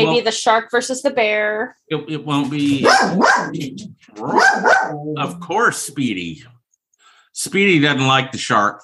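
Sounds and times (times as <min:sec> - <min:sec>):
speech: 0:00.0 - 0:06.6, 0:07.4 - 0:08.8
dog growling: 0:02.6 - 0:06.2
dog barking: 0:02.8 - 0:05.0.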